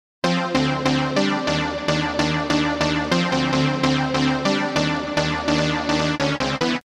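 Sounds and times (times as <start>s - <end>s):
synth C2 sub bass: 0.3s - 6.8s.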